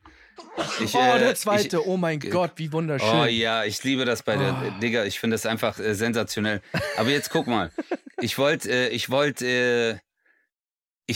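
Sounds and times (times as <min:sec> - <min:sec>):
sneeze: 0:00.4 - 0:01.2
speech: 0:00.6 - 0:10.0
laughter: 0:06.7 - 0:08.6.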